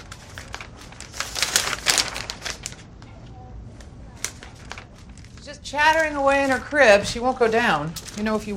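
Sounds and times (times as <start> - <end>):
newspaper pages rustling and crinkling as a woman scans the paper: 0.0 - 2.9, 3.8 - 8.5
speech: 5.5 - 8.5.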